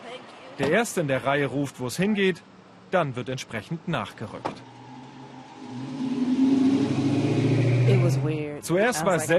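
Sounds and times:
speech: 0:00.6 - 0:04.7, 0:08.1 - 0:09.3
car engine accelerating: 0:04.2 - 0:08.5.

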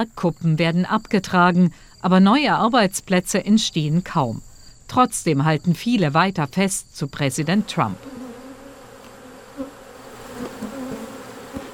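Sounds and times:
speech: 0:00.0 - 0:08.2
bees buzzing outdoors in West Virginia: 0:07.4 - 0:11.7.

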